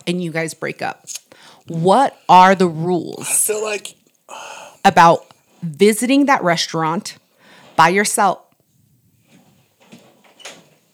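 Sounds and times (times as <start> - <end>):
speech: 0.0 - 7.2, 7.8 - 8.4
door being opened: 9.8 - 10.9.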